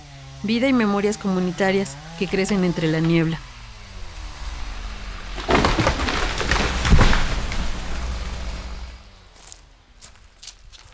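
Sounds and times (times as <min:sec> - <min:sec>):
speech: 0:00.4 - 0:03.5
footsteps on leaves and twigs along a forest trail: 0:03.1 - 0:10.9.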